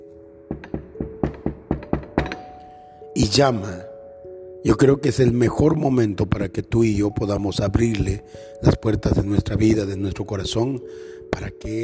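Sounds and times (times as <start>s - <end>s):
firm knocking on a door: 0.5s - 2.5s
speech: 3.2s - 3.9s, 4.6s - 11.8s.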